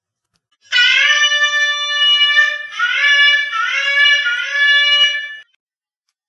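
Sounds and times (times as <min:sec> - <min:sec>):
shofar blowing a call: 0:00.7 - 0:05.5.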